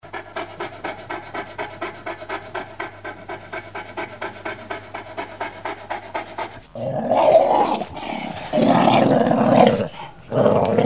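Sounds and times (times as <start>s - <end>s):
rapid regular pulsing: 0.0s - 10.3s
dog barking and growling: 6.8s - 10.8s.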